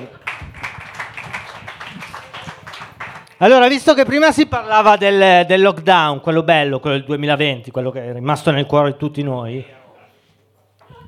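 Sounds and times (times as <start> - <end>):
audience applause at a comedy night: 0.0 - 3.7
speech: 3.4 - 9.8.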